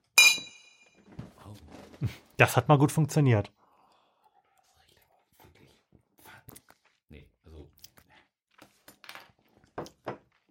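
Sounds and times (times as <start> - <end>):
glasses clinking in a toast: 0.0 - 0.9
dull knock of glasses being lowered: 0.2 - 0.8
speech: 2.0 - 3.6.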